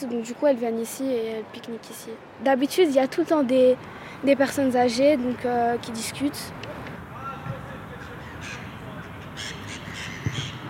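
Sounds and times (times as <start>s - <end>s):
speech: 0.0s - 6.8s
faint voices murmuring: 6.5s - 10.6s
crows cawing in short harsh bursts: 8.2s - 10.6s.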